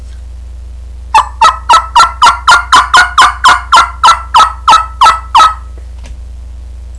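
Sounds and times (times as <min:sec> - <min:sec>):
turkey lost yelp: 0:01.1 - 0:05.8.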